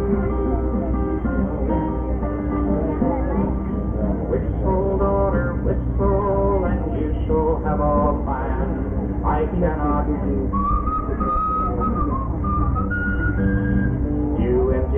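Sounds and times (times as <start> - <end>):
steady dense musical accompaniment: 0.0 - 14.9
person whistling a short melodic line: 10.5 - 14.1.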